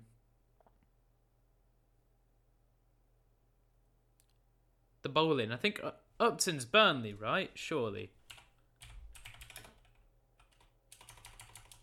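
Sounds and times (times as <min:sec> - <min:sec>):
speech: 0:05.0 - 0:08.2
typing on a computer keyboard: 0:08.2 - 0:11.8.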